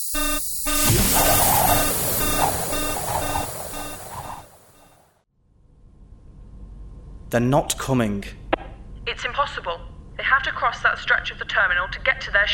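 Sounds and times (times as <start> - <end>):
harsh static-like noise: 0.0 - 4.9
airlock alarm beeping: 0.0 - 5.0
low hum: 0.0 - 5.0
speech: 7.3 - 8.4, 9.3 - 12.5.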